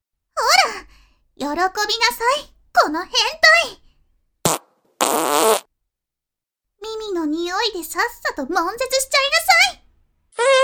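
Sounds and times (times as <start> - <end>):
speech: 1.4 - 3.8, 7.2 - 9.8
fart noises: 4.4 - 5.7, 10.3 - 10.6.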